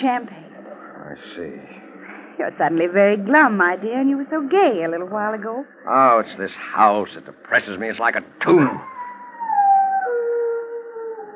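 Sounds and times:
speech: 0:00.0 - 0:00.4, 0:01.1 - 0:01.8, 0:02.4 - 0:08.9
single dog howling in a long mournful tone: 0:08.8 - 0:11.3.

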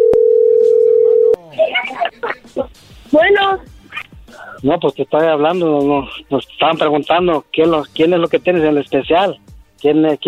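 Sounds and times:
telephone dial tone while redialing a call: 0:00.0 - 0:01.4
laughter: 0:01.4 - 0:02.7
speech: 0:04.6 - 0:10.2.

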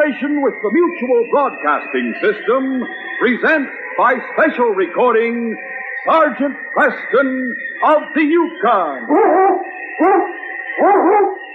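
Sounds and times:
speech: 0:00.2 - 0:11.4
lead sled dog howling and barking: 0:08.8 - 0:11.5.

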